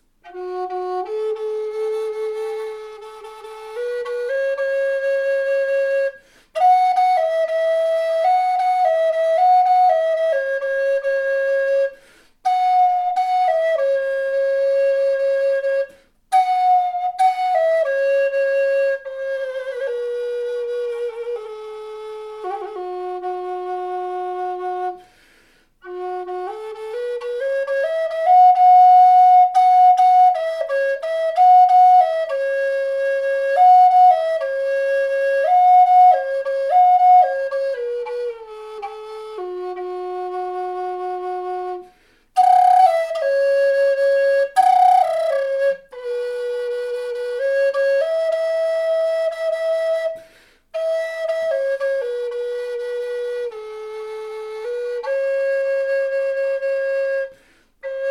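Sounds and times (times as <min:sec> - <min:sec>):
native flute in F sharp: 0:00.0 - 0:25.2, 0:25.8 - 0:58.1.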